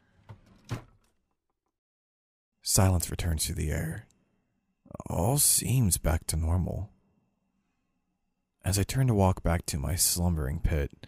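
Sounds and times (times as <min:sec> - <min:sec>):
door shutting and latching against its frame: 0:00.2 - 0:01.0
speech: 0:02.7 - 0:04.1, 0:05.1 - 0:06.9, 0:08.6 - 0:11.0.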